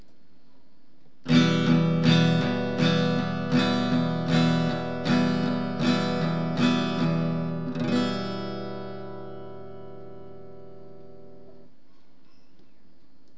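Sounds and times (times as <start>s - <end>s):
steel strings strummed: 1.3s - 11.7s.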